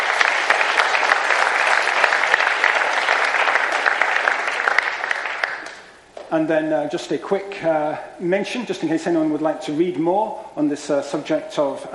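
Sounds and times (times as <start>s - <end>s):
audience applause: 0.0s - 5.9s
speech: 6.3s - 11.9s.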